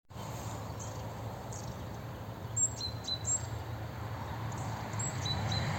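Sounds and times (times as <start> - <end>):
Parus major great tit calls: 0.4 - 3.7, 4.5 - 5.7.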